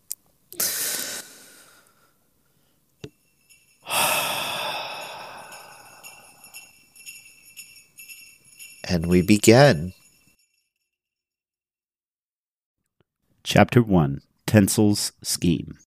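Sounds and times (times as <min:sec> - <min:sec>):
deep breath in and out: 0:00.6 - 0:02.8, 0:03.8 - 0:07.2
speech: 0:08.9 - 0:10.0, 0:13.5 - 0:15.8.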